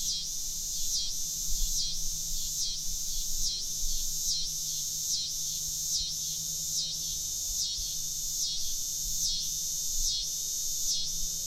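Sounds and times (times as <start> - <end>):
Coastal scissor grinder cicada song in the Lower Susquehanna River Watershed: 0.0 - 11.3.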